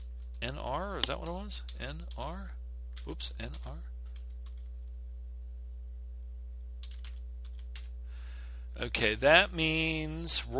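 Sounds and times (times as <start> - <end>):
computer keyboard typing: 0.0 - 4.9, 6.8 - 7.9
steady low electrical hum: 0.0 - 10.5
speech: 0.4 - 3.9, 8.8 - 10.5.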